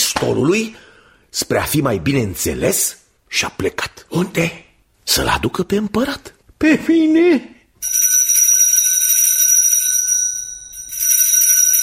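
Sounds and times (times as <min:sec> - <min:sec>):
speech: 0:00.2 - 0:07.6
small bell ringing in a bright rapid metallic trill: 0:07.8 - 0:11.8.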